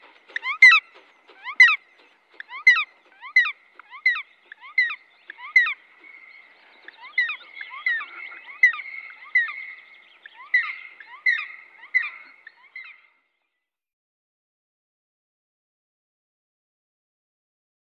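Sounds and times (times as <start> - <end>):
black woodpecker giving sharp ringing notes: 0.0 - 13.1.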